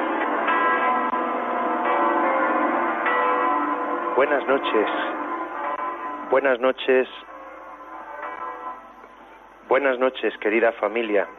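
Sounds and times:
basilica church bells ringing together: 0:00.0 - 0:11.3
speech: 0:04.2 - 0:05.2, 0:06.3 - 0:07.3, 0:09.7 - 0:11.3.

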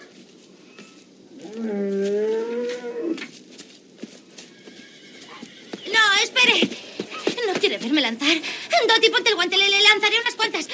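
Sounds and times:
shuffling sounds outdoors: 0:00.0 - 0:10.2
cow giving a long loud moo: 0:01.3 - 0:03.2
speech: 0:06.4 - 0:06.8, 0:07.6 - 0:10.7.

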